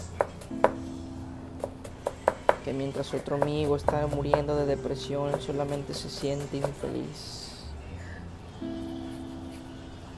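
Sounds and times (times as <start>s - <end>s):
knife chopping onions: 0.0s - 0.8s, 1.5s - 7.2s
speech: 2.6s - 7.5s.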